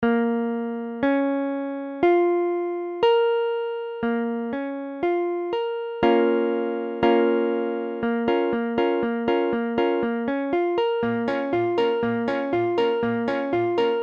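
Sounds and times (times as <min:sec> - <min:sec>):
guitar in B-flat minor: 0:00.0 - 0:14.0.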